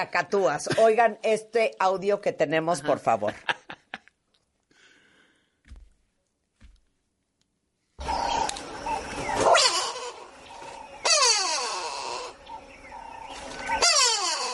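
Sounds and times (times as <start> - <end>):
speech: 0.0 - 3.6
go-away-bird harsh nasal cries: 8.0 - 14.5.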